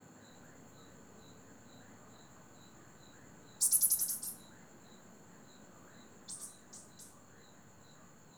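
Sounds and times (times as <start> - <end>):
cricket in a village at night: 0.2 - 8.2
frogs in a village at night: 0.4 - 8.2
animal with a loud hissing sound in a village at night: 3.3 - 4.4.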